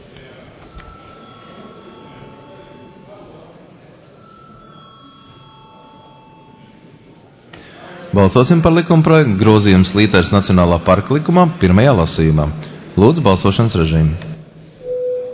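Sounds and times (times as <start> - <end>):
murmuring room of chatter: 0.0 - 15.3
electric bell ringing to call a parliamentary vote: 0.7 - 3.2, 4.0 - 6.7
speech: 8.2 - 14.3.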